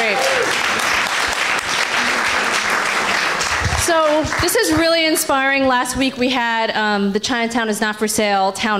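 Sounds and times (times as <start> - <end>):
crowd applauding: 0.0 - 5.1
speech: 3.9 - 8.7.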